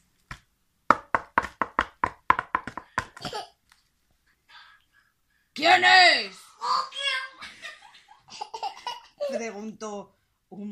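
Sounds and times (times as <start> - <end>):
knocking on a closed door: 0.9 - 3.2
speech: 5.8 - 6.4, 9.4 - 10.7.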